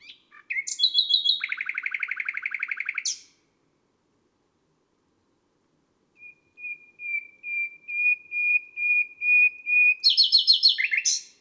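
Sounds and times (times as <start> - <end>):
common nightingale singing: 0.0 - 3.4, 6.2 - 11.3.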